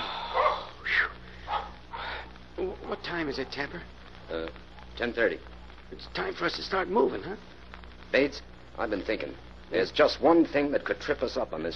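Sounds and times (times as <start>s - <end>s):
steady hiss: 0.0s - 11.7s
dog barking: 0.3s - 0.7s, 1.4s - 2.0s
speech: 3.1s - 11.7s.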